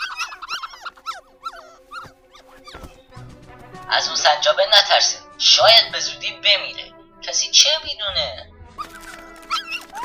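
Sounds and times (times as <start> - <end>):
dog growling: 0.0 - 3.0
several dogs whining and whimpering: 0.0 - 3.1, 8.8 - 10.0
speech: 3.9 - 8.5.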